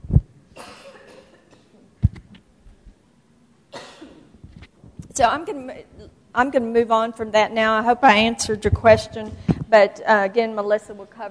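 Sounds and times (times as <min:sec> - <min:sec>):
low thumping pops: 0:00.0 - 0:00.4, 0:02.0 - 0:02.9, 0:08.1 - 0:09.7
harsh coughs into a microphone: 0:00.6 - 0:01.7, 0:03.7 - 0:04.3
speech: 0:05.2 - 0:11.2.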